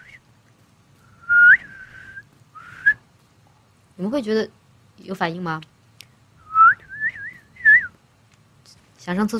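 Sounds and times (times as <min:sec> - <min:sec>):
short tuneless mouth whistles with small upward slides: 0:01.1 - 0:03.0, 0:06.4 - 0:08.0
speech: 0:04.0 - 0:05.7, 0:09.1 - 0:09.3.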